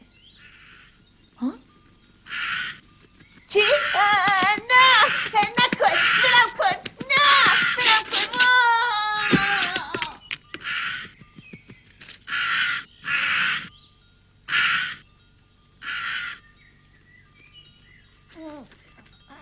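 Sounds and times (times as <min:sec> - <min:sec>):
bird chirps: 0:00.0 - 0:05.6, 0:09.6 - 0:19.4
bird cawing harshly: 0:00.4 - 0:00.9, 0:02.3 - 0:02.8, 0:03.6 - 0:06.6, 0:07.2 - 0:08.6, 0:10.6 - 0:11.1, 0:12.3 - 0:13.7, 0:14.5 - 0:15.0, 0:15.8 - 0:16.4.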